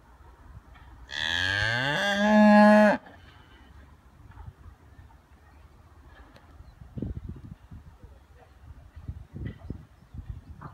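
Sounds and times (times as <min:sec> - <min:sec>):
cow giving a sustained harmonic-rich moo: 0:01.1 - 0:03.0.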